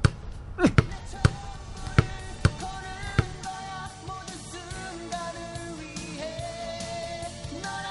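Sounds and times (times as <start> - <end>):
basketball bouncing on a court: 0.0 - 3.5.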